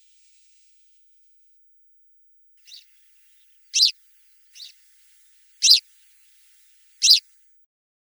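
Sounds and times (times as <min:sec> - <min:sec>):
Richard's pipit harsh high calls: 0:03.8 - 0:04.0, 0:04.6 - 0:07.2.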